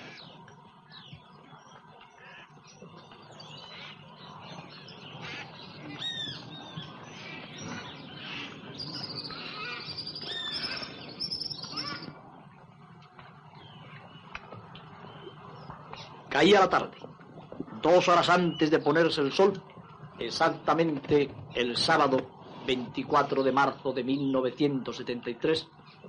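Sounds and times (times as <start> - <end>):
overlapping jungle bird chatter: 0.0 - 26.0
parrot and macaw calls in jungle: 7.1 - 12.1
speech: 16.4 - 17.0, 17.8 - 25.8.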